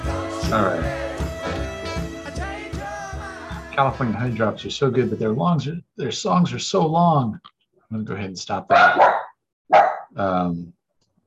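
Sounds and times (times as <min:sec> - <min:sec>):
speech: 0:00.5 - 0:01.0, 0:03.8 - 0:09.1, 0:10.2 - 0:10.8
dogs barking at garden work outside: 0:08.7 - 0:10.2.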